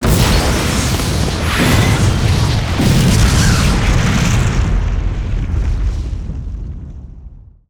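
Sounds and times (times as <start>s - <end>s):
big explosion: 0.0s - 7.6s.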